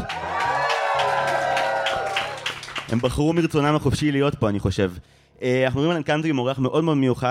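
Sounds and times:
live crowd cheering and whooping: 0:00.0 - 0:02.7
people clapping: 0:00.0 - 0:03.5
speech: 0:02.9 - 0:07.2.

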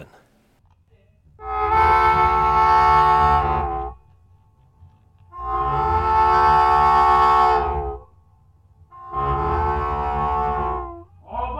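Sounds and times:
wailing harmonica chords mimicking a train whistle in a slow blues song: 0:01.3 - 0:11.5.

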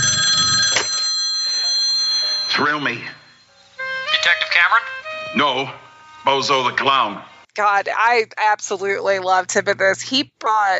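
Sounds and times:
telephone ringing with an electronic trill: 0:00.0 - 0:06.5
speech: 0:02.6 - 0:03.2, 0:04.2 - 0:10.7.

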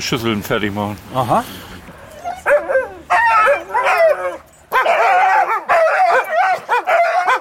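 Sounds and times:
speech: 0:00.0 - 0:01.7
hungry huskies barking, yipping and howling before feeding: 0:02.0 - 0:07.4.

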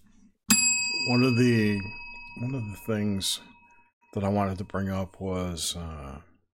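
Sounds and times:
bell ding: 0:00.5 - 0:04.8
speech: 0:01.0 - 0:03.5, 0:04.1 - 0:06.3.

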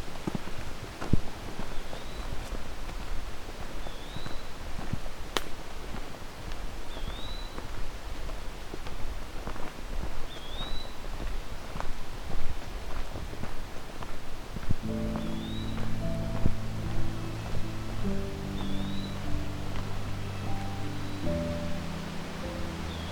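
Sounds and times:
wind noise: 0:00.0 - 0:23.0
eastern wood-pewee singing in a mature forest: 0:06.9 - 0:07.6, 0:10.3 - 0:11.0, 0:15.0 - 0:16.2, 0:18.6 - 0:19.6.

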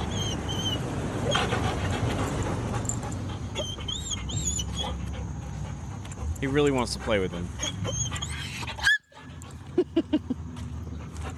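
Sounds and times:
German shorthaired pointer whimpering at goats: 0:00.0 - 0:01.5, 0:03.5 - 0:05.0, 0:07.6 - 0:09.0
rushing outdoor background: 0:00.0 - 0:11.3
speech: 0:06.4 - 0:08.2.

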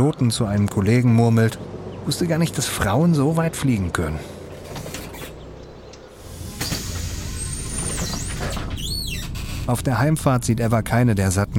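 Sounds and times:
speech: 0:00.0 - 0:04.4, 0:09.7 - 0:11.5
bus engine rumbling: 0:00.0 - 0:11.5
bus sliding door squealing: 0:04.8 - 0:05.4, 0:06.2 - 0:09.8
bus brakes hissing: 0:06.2 - 0:09.7.

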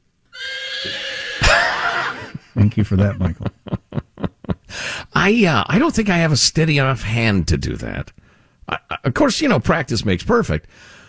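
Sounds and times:
horse neighing: 0:00.3 - 0:02.4
laughter: 0:01.4 - 0:04.6
speech: 0:02.6 - 0:03.6, 0:05.2 - 0:11.0.

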